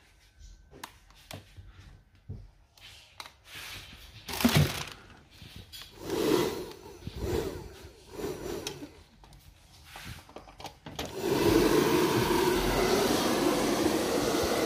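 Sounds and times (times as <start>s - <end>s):
hair dryer blowing: 6.0s - 9.0s, 11.0s - 14.6s.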